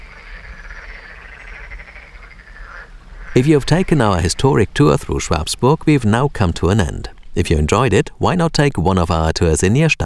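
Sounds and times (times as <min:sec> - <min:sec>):
dense chorus of frogs croaking: 0:00.0 - 0:07.3
speech: 0:03.4 - 0:10.0.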